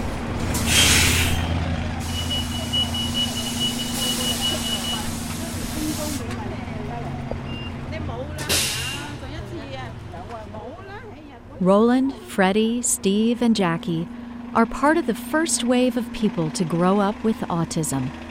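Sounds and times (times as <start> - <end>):
bus rumbling as it pulls up: 0.0 - 18.3
bus air brakes hissing: 0.5 - 6.3, 8.4 - 9.3
speech: 11.6 - 18.2.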